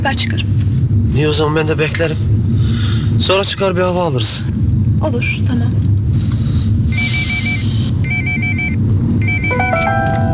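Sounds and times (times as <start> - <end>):
speech: 0.0 - 5.9
steady low car engine rumble: 4.7 - 10.3
mobile phone ringtone chiming in bright electronic tones: 6.9 - 10.3.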